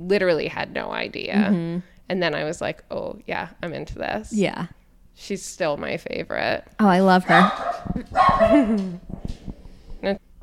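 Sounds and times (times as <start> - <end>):
speech: 0.0 - 9.4
faint noise: 0.0 - 10.4
dog barking: 7.3 - 8.7.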